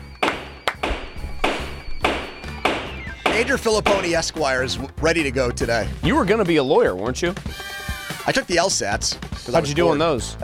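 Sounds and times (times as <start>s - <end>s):
toy gavel from a toddler judge costume banging: 0.2s - 4.3s
speech: 3.4s - 7.6s, 8.2s - 10.4s.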